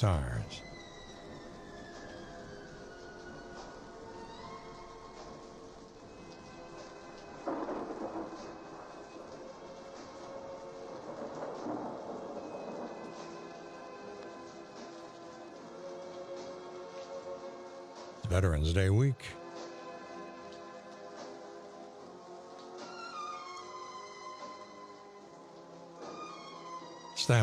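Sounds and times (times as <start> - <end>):
speech: 0.0 - 0.7, 18.4 - 19.4
steady rain: 0.0 - 27.4
low thunder rumbling: 7.3 - 13.5.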